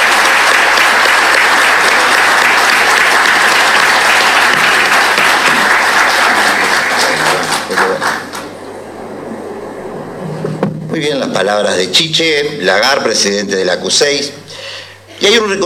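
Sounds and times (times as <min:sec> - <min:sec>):
sizable audience applauding honorees at an awards ceremony: 0:00.0 - 0:09.2
speech: 0:11.0 - 0:14.4, 0:15.2 - 0:15.6.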